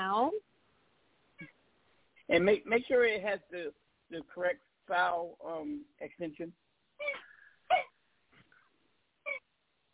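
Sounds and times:
speech: 2.3s - 6.6s
dog playing with a squeaky toy: 7.0s - 7.9s.

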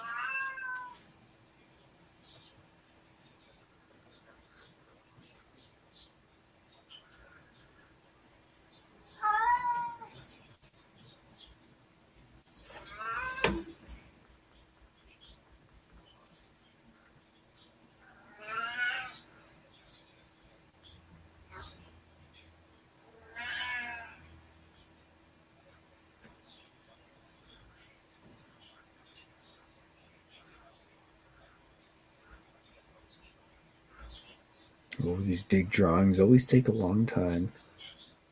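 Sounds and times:
cat whining and meowing: 0.0s - 1.0s, 9.1s - 10.2s, 12.8s - 13.7s, 18.3s - 19.2s, 23.2s - 24.2s
speech: 35.0s - 37.7s.

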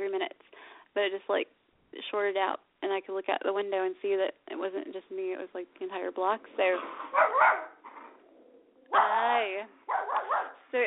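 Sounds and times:
speech: 1.0s - 7.7s, 9.2s - 9.8s
dog barking: 6.9s - 8.2s, 8.9s - 9.3s, 9.9s - 10.7s.

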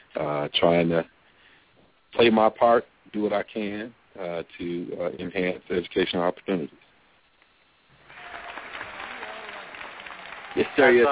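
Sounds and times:
speech: 0.2s - 1.2s, 2.1s - 6.8s, 10.6s - 11.1s
crowd applauding: 7.9s - 11.1s.

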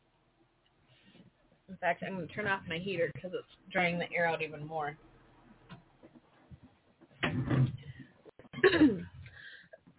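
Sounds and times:
speech: 1.7s - 5.1s
person coughing: 8.6s - 9.2s
throat clearing: 8.6s - 9.2s.

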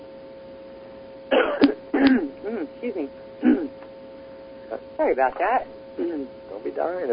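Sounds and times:
faint steady hum: 0.0s - 7.1s
person coughing and choking after swallowing wrong: 1.3s - 2.6s, 3.4s - 3.8s, 6.0s - 6.3s
throat clearing: 1.3s - 2.6s, 3.4s - 3.8s, 6.0s - 6.3s
speech: 2.8s - 3.2s, 5.0s - 7.1s.

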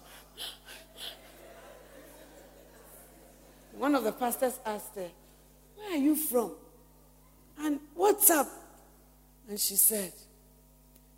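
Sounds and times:
person imitating heavy panting: 0.0s - 1.4s
laughter: 0.0s - 3.9s
speech: 3.8s - 5.2s, 5.9s - 6.6s, 7.6s - 8.6s, 9.5s - 10.3s.

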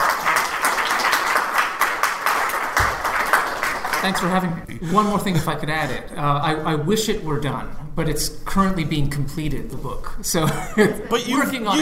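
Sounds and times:
crowd applause: 0.0s - 4.4s
speech: 4.0s - 11.7s
laughter: 4.2s - 6.4s, 10.4s - 11.7s.

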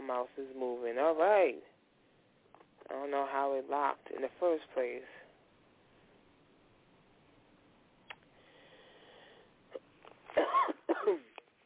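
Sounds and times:
faint steady hum: 0.0s - 11.6s
speech: 0.1s - 1.8s, 2.9s - 5.2s
person coughing harshly: 9.7s - 11.4s.

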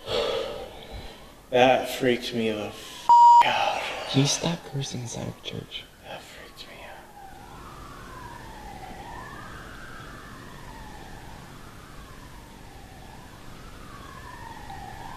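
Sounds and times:
speech: 1.5s - 5.9s
police car siren wailing: 6.6s - 15.1s.

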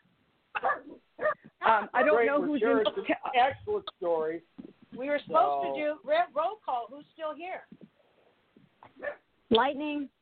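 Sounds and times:
dog barking: 0.5s - 2.2s, 8.9s - 9.3s
dog yipping: 0.6s - 1.5s, 9.0s - 9.2s
speech: 2.0s - 7.7s, 9.5s - 10.1s.

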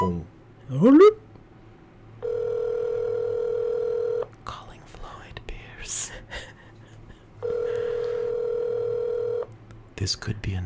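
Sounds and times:
speech: 0.0s - 1.2s, 10.1s - 10.6s
telephone ringback tones on speakerphone: 2.2s - 4.3s, 7.4s - 9.5s.

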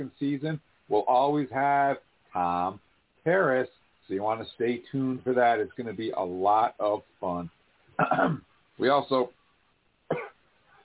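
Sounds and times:
speech: 0.0s - 9.4s
cough: 8.0s - 8.5s, 10.1s - 10.4s.

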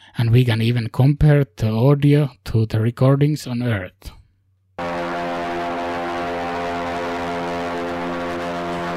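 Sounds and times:
speech: 0.4s - 4.2s
Ingenuity helicopter rotor blades humming on Mars: 4.8s - 8.9s.

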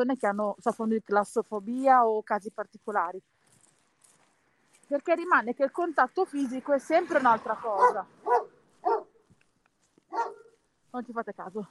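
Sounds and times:
speech: 0.0s - 3.4s, 4.9s - 8.4s, 10.9s - 11.6s
dogs barking: 7.7s - 9.2s, 10.1s - 10.6s.

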